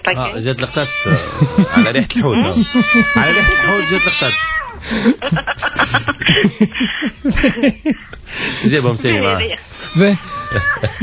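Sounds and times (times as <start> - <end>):
speech: 0.0 - 11.0
cat meowing with a rising-then-falling tone: 0.6 - 4.8, 9.8 - 11.0
laughter: 1.1 - 8.7, 10.4 - 11.0.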